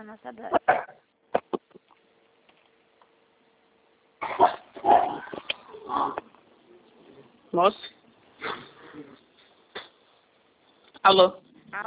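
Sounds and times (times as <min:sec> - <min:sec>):
speech: 0:00.0 - 0:01.1, 0:07.6 - 0:07.9, 0:11.1 - 0:11.8
dog barking and yelping: 0:04.2 - 0:05.2.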